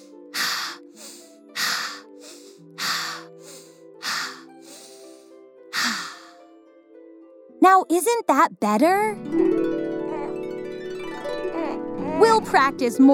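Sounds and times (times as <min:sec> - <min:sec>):
slow breathy sighing exhales as a relaxation exercise: 0:00.0 - 0:06.4
soft sustained music: 0:00.0 - 0:13.1
speech: 0:07.6 - 0:09.5, 0:12.2 - 0:13.1.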